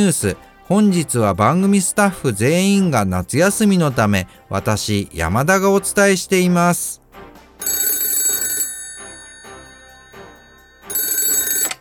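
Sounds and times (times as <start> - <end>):
speech: 0.0 - 7.8
telephone ringing with bright trilling bell tone: 7.6 - 11.8.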